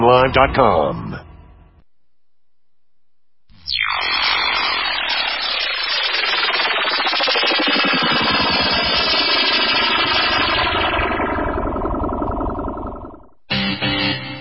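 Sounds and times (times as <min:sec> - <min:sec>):
speech: 0:00.0 - 0:01.2
drone aircraft propeller buzz: 0:03.6 - 0:14.3.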